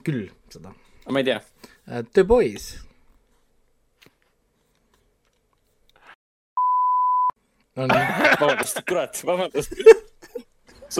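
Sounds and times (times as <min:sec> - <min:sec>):
speech: 0:00.0 - 0:02.9, 0:07.8 - 0:10.0
censor bleep over a swear word: 0:06.6 - 0:07.4
laughter: 0:07.9 - 0:10.4.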